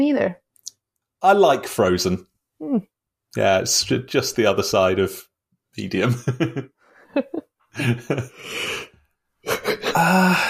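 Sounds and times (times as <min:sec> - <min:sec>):
speech: 0:00.0 - 0:00.4, 0:01.2 - 0:10.4
laughter: 0:06.0 - 0:10.3
person yawning: 0:09.5 - 0:10.4.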